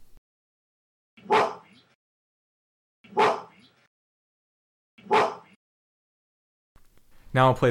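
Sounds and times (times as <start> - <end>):
gorilla barking: 1.2 - 2.0, 3.0 - 3.8, 5.0 - 5.6
speech: 7.3 - 7.6.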